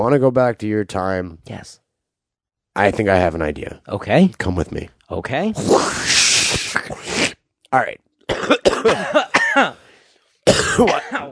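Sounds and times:
speech: 0.0 - 1.8, 2.8 - 7.1, 7.7 - 9.7, 10.5 - 11.3
harsh dry coughs: 8.3 - 9.8, 10.4 - 11.3.

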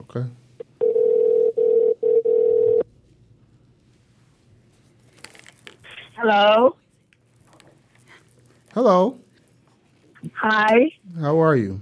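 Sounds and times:
speech: 0.1 - 0.4, 6.2 - 6.8, 8.8 - 9.2, 10.2 - 11.8
telephone dial tone: 0.6 - 2.8.

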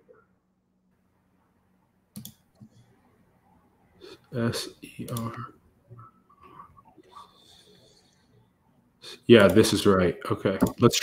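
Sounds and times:
quiet room noise: 0.0 - 11.0
computer mouse clicks: 2.1 - 2.9, 5.0 - 5.3
speech: 4.3 - 6.1, 9.3 - 11.0.

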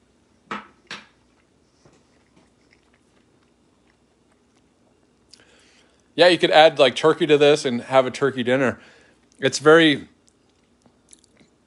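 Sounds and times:
chewing buttered noodles: 1.2 - 6.2, 10.2 - 11.6
speech: 6.2 - 10.1.

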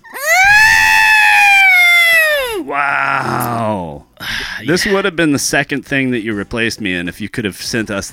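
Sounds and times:
person's voice imitating a droid robot's electronic scream: 0.0 - 4.0
speech: 4.6 - 8.1.

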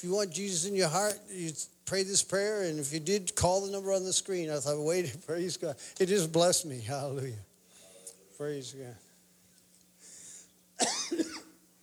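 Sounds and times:
speech: 0.0 - 7.5, 8.4 - 9.0
faint hum: 0.0 - 11.8
person with a tickle in the throat coughing: 10.8 - 11.6.

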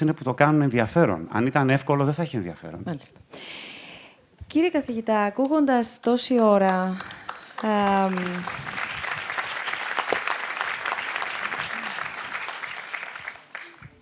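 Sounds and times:
speech: 0.0 - 3.8, 4.5 - 8.8
audience applause: 7.0 - 14.0
vocal cheer: 11.4 - 12.1.

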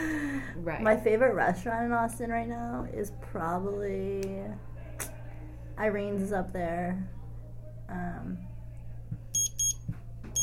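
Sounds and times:
low hum: 0.0 - 10.4
speech: 0.6 - 4.7, 5.8 - 7.2, 7.9 - 8.5
electronic buzzer bursts signaling time is up: 9.4 - 9.8.

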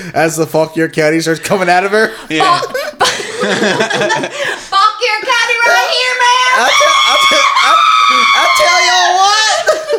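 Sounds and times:
speech: 0.1 - 4.8
laughter: 1.4 - 4.7, 6.2 - 9.9
man screaming loudly: 5.6 - 9.6.

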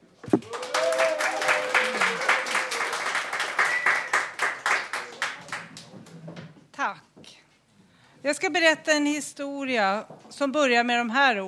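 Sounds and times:
audience applause: 0.3 - 6.1
faint voices and whoops: 0.4 - 4.2
speech: 8.4 - 11.4.

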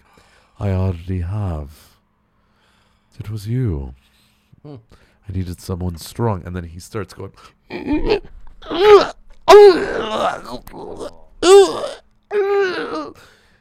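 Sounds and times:
speech: 0.6 - 1.9, 3.2 - 13.4
voice imitating someone gasping for help: 7.7 - 13.4.

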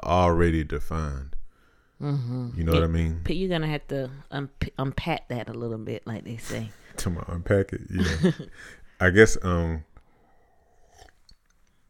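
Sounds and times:
speech: 0.1 - 1.4, 2.0 - 9.9
person sipping tea: 10.6 - 11.4.

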